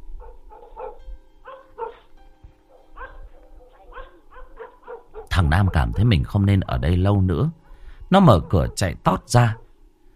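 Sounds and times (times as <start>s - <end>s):
dog barking furiously at night: 0.2s - 2.1s, 2.7s - 6.2s, 8.3s - 8.9s
speech: 5.4s - 9.6s.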